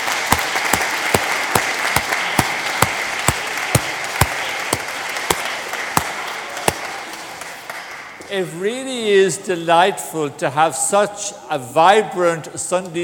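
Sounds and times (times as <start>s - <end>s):
pair of hands clapping sharply: 0.0s - 8.0s
audience applauding: 0.0s - 8.2s
speech: 8.3s - 13.0s.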